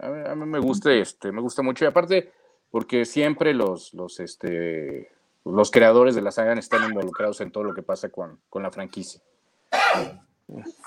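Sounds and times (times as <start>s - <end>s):
speech: 0.3s - 9.3s, 10.0s - 10.8s
person sneezing: 6.7s - 7.2s, 9.7s - 10.2s
brief voiced sound: 6.7s - 7.8s.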